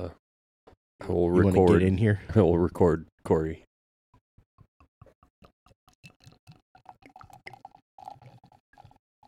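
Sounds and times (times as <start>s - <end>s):
speech: 0.0s - 0.2s, 1.0s - 3.7s
fizzy bubbling of beer: 5.4s - 9.2s
beer being poured: 5.8s - 9.2s.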